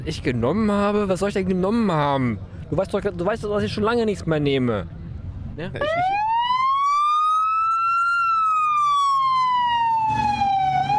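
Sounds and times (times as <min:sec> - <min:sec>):
speech: 0:00.0 - 0:05.0, 0:05.6 - 0:06.3
faint traffic rumble: 0:00.0 - 0:10.9
police car siren wailing as it drives across a square: 0:05.8 - 0:10.9.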